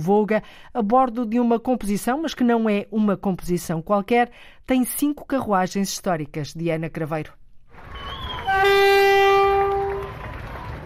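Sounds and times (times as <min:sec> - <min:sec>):
speech: 0:00.0 - 0:07.4
historic train horn blast: 0:08.3 - 0:10.4.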